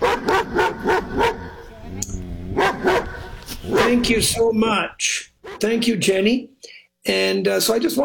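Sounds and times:
dog barking: 0:00.0 - 0:01.6, 0:02.6 - 0:04.1
speech: 0:03.9 - 0:08.0.

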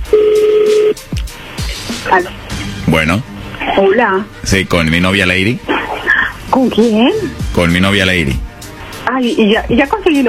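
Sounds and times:
steady mid-pitched phone line tone: 0:00.0 - 0:01.0
speech: 0:02.1 - 0:05.8, 0:06.6 - 0:08.5, 0:09.1 - 0:10.2.

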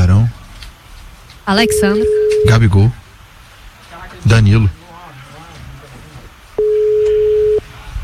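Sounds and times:
faint low noise: 0:00.0 - 0:08.0
speech: 0:01.5 - 0:03.0, 0:04.2 - 0:04.8
telephone busy signal while placing a call: 0:01.6 - 0:02.6, 0:06.6 - 0:07.6.

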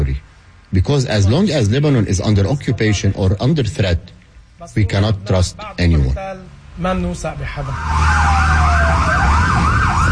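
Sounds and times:
speech: 0:00.7 - 0:09.2
emergency siren wailing with rising-and-falling sweeps: 0:07.6 - 0:10.1.

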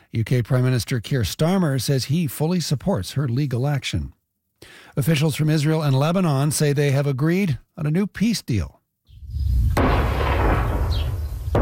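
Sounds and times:
speech: 0:00.1 - 0:08.8
heavy explosions booming in southern Lebanon: 0:09.3 - 0:11.6.

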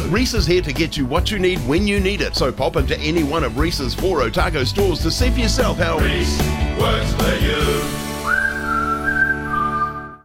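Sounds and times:
speech: 0:00.1 - 0:08.0
person whistling a rising then steady note: 0:08.2 - 0:10.2.

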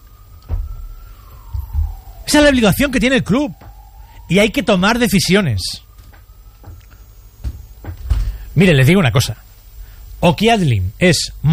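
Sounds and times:
ambulance siren wailing: 0:00.0 - 0:09.2
low rumbling noise: 0:00.0 - 0:11.5
brief dull thump: 0:00.4 - 0:04.0, 0:06.0 - 0:08.4
speech: 0:02.3 - 0:03.6, 0:04.3 - 0:05.8, 0:08.6 - 0:09.4, 0:10.2 - 0:11.5.

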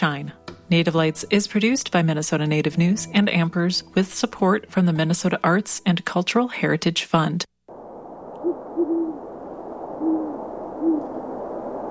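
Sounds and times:
speech: 0:00.0 - 0:07.5
quiet hiss: 0:07.7 - 0:11.8
great horned owl hooting softly: 0:08.4 - 0:11.8.

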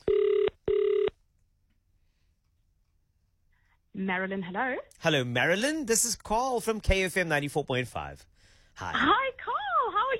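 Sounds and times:
ringback tones from an outgoing phone call: 0:00.0 - 0:01.1
speech: 0:04.0 - 0:09.5.

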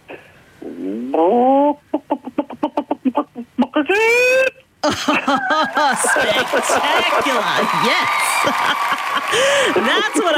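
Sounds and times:
person imitating chicken clucking and squawking: 0:00.6 - 0:04.7
speech: 0:00.9 - 0:02.2, 0:03.9 - 0:10.3
laughter: 0:04.8 - 0:10.3.

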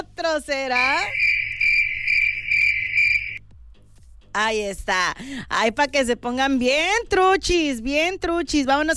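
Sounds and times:
speech: 0:00.2 - 0:01.3, 0:04.4 - 0:08.9
crickets chirping in a high-pitched trill: 0:00.8 - 0:03.4.

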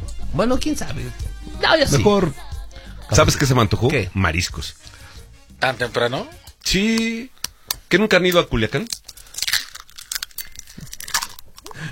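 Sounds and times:
speech: 0:00.4 - 0:02.4, 0:03.1 - 0:05.0, 0:05.6 - 0:09.0
ice cubes crunching and crackling: 0:08.7 - 0:11.9.

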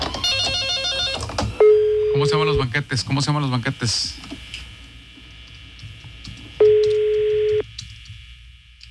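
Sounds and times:
steady electronic tone of a telephone being dialed to call a banquet service: 0:00.1 - 0:02.5, 0:06.6 - 0:07.7
speech: 0:02.2 - 0:04.4.

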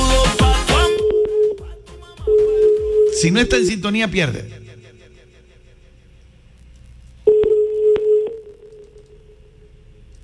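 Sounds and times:
telephone line tone as a call is transferred: 0:01.0 - 0:03.3, 0:07.3 - 0:09.5
speech: 0:03.2 - 0:04.6.

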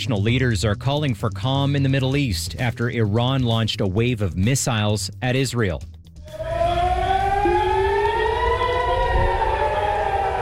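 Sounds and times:
speech: 0:00.0 - 0:06.4
air raid sirens wailing across a city: 0:06.2 - 0:10.4.

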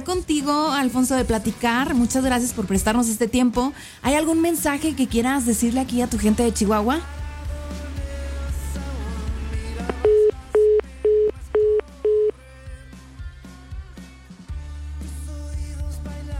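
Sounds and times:
quiet music: 0:00.0 - 0:12.4
speech: 0:00.1 - 0:07.2
telephone line tone beeps after a phone call is cut off: 0:09.9 - 0:12.3.

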